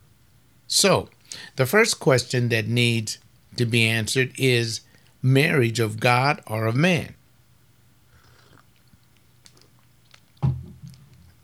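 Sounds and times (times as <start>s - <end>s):
speech: 0.8s - 7.2s
faint mouth sounds: 8.0s - 10.4s
slurp of hot coffee: 8.1s - 10.4s
swallow: 8.1s - 10.4s.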